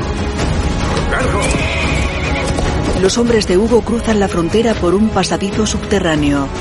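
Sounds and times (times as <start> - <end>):
horses whinnying as let out of a barn: 0.8 - 2.9
speech: 3.0 - 6.6.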